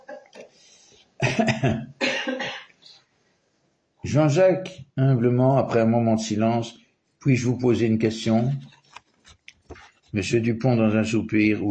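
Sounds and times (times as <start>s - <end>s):
faint breathy lead-in: 0.4s - 1.2s
harsh coughs: 1.2s - 2.8s
speech: 1.3s - 2.0s, 4.1s - 8.7s, 10.1s - 11.6s.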